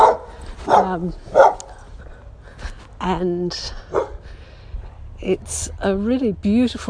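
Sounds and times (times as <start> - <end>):
dogs barking with a whining yelp: 0.0 - 1.9, 3.9 - 4.2
speech: 0.9 - 1.5, 3.1 - 4.0, 5.2 - 6.8.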